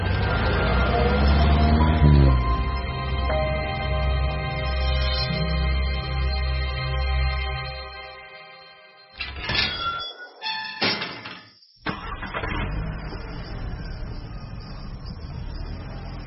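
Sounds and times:
car rolling in through a gate at an old house: 0:00.0 - 0:06.6, 0:11.8 - 0:16.2
large iron-framed gate clanking and scraping: 0:09.2 - 0:11.6.

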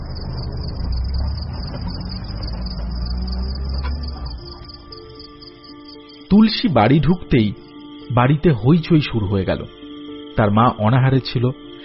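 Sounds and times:
lorry engine rumbling as it drives away round a bend in the road: 0:00.0 - 0:06.8
speech: 0:06.3 - 0:09.8, 0:10.4 - 0:11.6.

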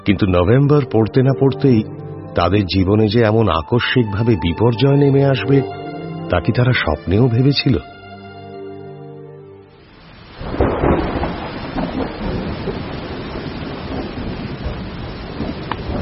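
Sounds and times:
speech: 0:00.0 - 0:07.9
dense steady rain with hail: 0:09.6 - 0:16.0
thunder in a November thunderstorm: 0:10.4 - 0:16.0.

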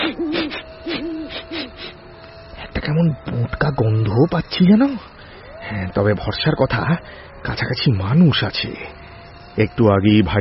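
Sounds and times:
eagle-owl hooting at night: 0:00.0 - 0:10.3
speech: 0:02.9 - 0:09.0, 0:09.6 - 0:10.3.

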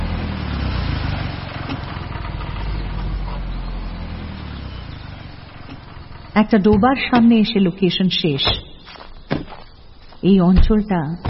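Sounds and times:
car engine rumbling while speeding along a narrow winding road: 0:00.0 - 0:11.2
speech: 0:06.4 - 0:08.7, 0:10.2 - 0:11.2.

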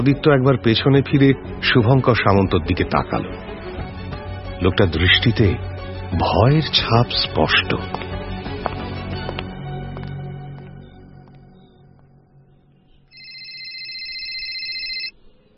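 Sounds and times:
speech: 0:00.0 - 0:03.6, 0:04.6 - 0:08.1
mobile phone ringing with a warbling electronic tone: 0:13.2 - 0:15.1.

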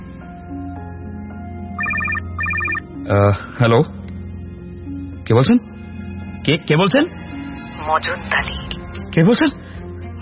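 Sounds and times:
telephone ringtone of bright electronic trilling beeps: 0:01.8 - 0:02.8
speech: 0:03.1 - 0:04.0, 0:05.3 - 0:05.7, 0:06.4 - 0:07.2, 0:07.8 - 0:08.6, 0:09.2 - 0:09.6.

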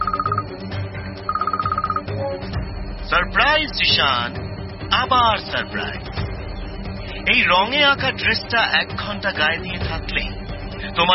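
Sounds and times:
satellite phone ringing with rapid electronic warbling tone: 0:00.0 - 0:00.6, 0:01.3 - 0:02.3
speech: 0:03.1 - 0:06.2, 0:07.2 - 0:10.2, 0:11.0 - 0:11.1.

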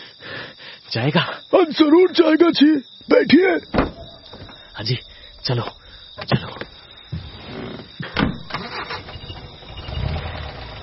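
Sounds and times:
speech: 0:00.9 - 0:03.8, 0:04.8 - 0:06.6
taxi engine starting: 0:08.4 - 0:10.8.

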